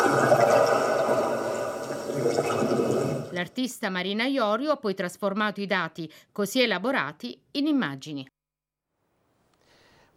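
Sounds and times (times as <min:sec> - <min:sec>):
sea and deep-ocean sound recorded with an acoustic echo sounder: 0:00.0 - 0:03.4
speech: 0:03.4 - 0:08.3.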